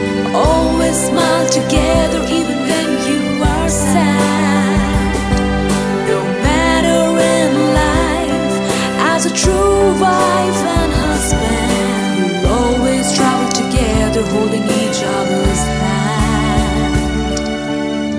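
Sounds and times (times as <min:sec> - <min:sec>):
English female voice singing anniversary tune: 0:00.2 - 0:18.0.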